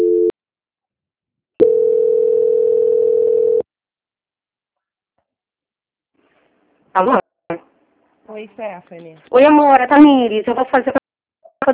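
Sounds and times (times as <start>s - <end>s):
steady mid-pitched telephone line tone during a call transfer: 0.0s - 0.3s, 1.6s - 3.6s
speech: 7.0s - 7.2s, 8.4s - 11.0s.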